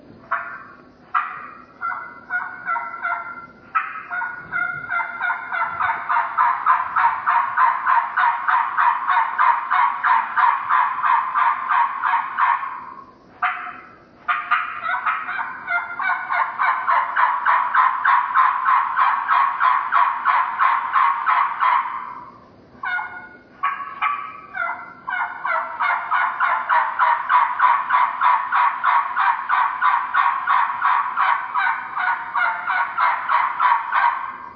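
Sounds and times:
turkey call imitating an adult hen's assembly yell: 0:00.3 - 0:34.5.

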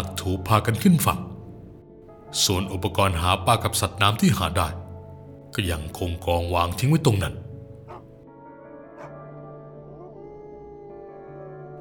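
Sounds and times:
speech: 0:00.2 - 0:01.3, 0:02.3 - 0:04.8, 0:05.5 - 0:07.4
dog barking: 0:07.8 - 0:08.1, 0:08.8 - 0:10.2.

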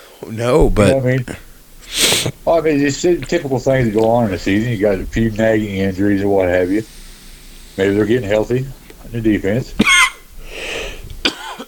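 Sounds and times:
speech: 0:00.2 - 0:01.5, 0:02.2 - 0:07.0, 0:07.8 - 0:09.8
breathy hissing exhale of vape: 0:01.3 - 0:02.4, 0:06.6 - 0:09.1, 0:10.1 - 0:11.2
person coughing after a deep vape hit: 0:09.8 - 0:10.2, 0:11.2 - 0:11.6.

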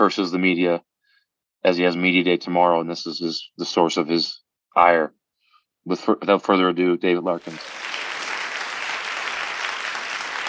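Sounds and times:
speech: 0:00.0 - 0:00.9, 0:01.6 - 0:05.2, 0:05.8 - 0:07.9
crowd applauding: 0:07.4 - 0:10.4.

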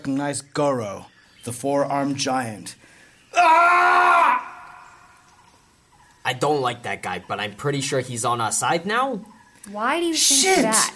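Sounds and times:
speech: 0:00.0 - 0:04.2, 0:06.3 - 0:10.9
thunderous yell of pain: 0:03.3 - 0:04.9.

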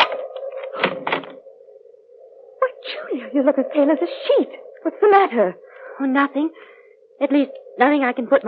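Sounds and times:
bedroom door being unlocked with mechanical clicks and rattling thunks: 0:00.0 - 0:01.4
speech: 0:03.1 - 0:08.4.

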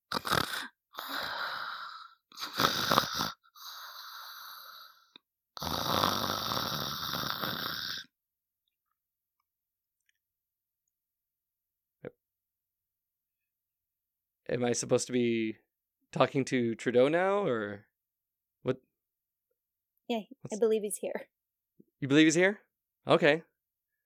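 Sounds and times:
person imitating snoring with the voice: 0:00.0 - 0:08.1
speech: 0:14.5 - 0:17.9, 0:18.6 - 0:18.9, 0:20.1 - 0:21.4, 0:22.0 - 0:23.5.

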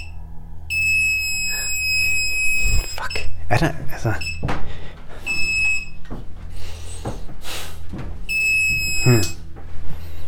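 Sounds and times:
hidden-microphone detector tones against a wall: 0:00.0 - 0:03.4, 0:08.3 - 0:09.4
speech: 0:03.5 - 0:04.8, 0:09.0 - 0:09.4.

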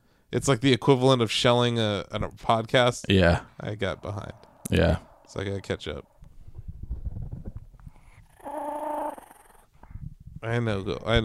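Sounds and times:
speech: 0:00.3 - 0:06.1, 0:10.4 - 0:11.2
dog growling: 0:08.0 - 0:09.7.

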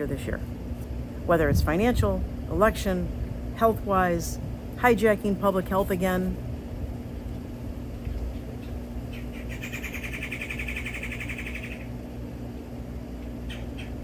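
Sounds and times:
speech: 0:00.0 - 0:00.6, 0:01.3 - 0:06.5
tropical birds calling: 0:08.1 - 0:12.0, 0:13.2 - 0:14.0
tropical bird giving a rapidly pulsing trill: 0:08.6 - 0:11.9, 0:13.4 - 0:14.0.

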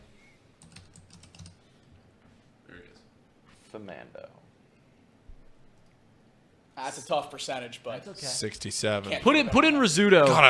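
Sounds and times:
typing on a computer keyboard: 0:00.6 - 0:01.6
speech: 0:03.7 - 0:04.4, 0:06.8 - 0:10.4.

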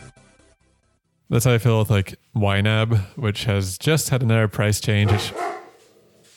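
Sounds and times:
speech: 0:01.3 - 0:05.6
dogs barking at a dog outside: 0:05.0 - 0:06.1
faint barking from dogs reacting to a dog outside: 0:05.0 - 0:06.3.

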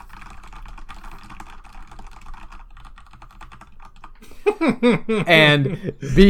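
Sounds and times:
mechanical keyboard typing: 0:00.0 - 0:04.2
laughter: 0:04.2 - 0:06.2
speech: 0:04.5 - 0:06.2.

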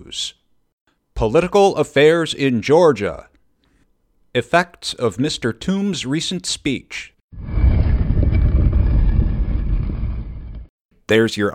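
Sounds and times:
speech: 0:00.1 - 0:00.4, 0:01.2 - 0:03.3, 0:04.3 - 0:07.5, 0:11.1 - 0:11.5
heavy stone tomb door grinding open: 0:07.3 - 0:10.7.

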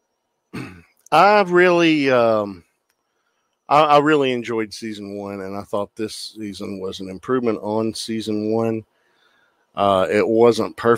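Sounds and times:
throat clearing: 0:00.5 - 0:01.0
speech: 0:01.1 - 0:02.6, 0:03.7 - 0:08.9, 0:09.8 - 0:10.9.

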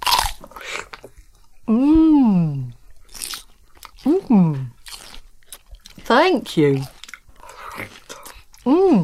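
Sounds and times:
person biting and chewing a crunchy apple: 0:00.0 - 0:01.2, 0:03.1 - 0:08.7
speech: 0:01.7 - 0:02.1, 0:06.2 - 0:06.9
person humming: 0:01.7 - 0:02.8, 0:04.1 - 0:04.8, 0:08.6 - 0:09.0.

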